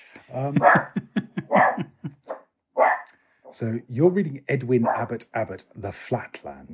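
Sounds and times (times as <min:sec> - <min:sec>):
laughter: 0:00.1 - 0:02.2
speech: 0:00.3 - 0:01.1, 0:03.6 - 0:06.7
dogs barking: 0:00.6 - 0:03.1, 0:04.8 - 0:05.1.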